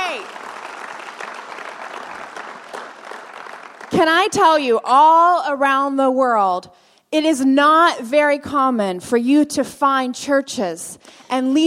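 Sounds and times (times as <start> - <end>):
church congregation clapping: 0.0 - 4.6
speech: 4.0 - 11.6.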